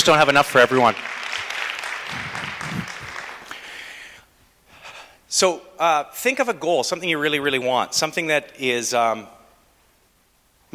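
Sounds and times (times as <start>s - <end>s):
speech: 0.0s - 1.1s, 5.3s - 9.4s
audience applause: 0.3s - 3.8s.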